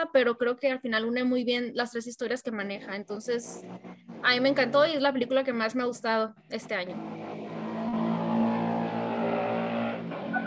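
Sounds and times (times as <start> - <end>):
speech: 0.0 - 7.3
motorcycle engine droning outside: 3.4 - 5.1, 6.9 - 10.4.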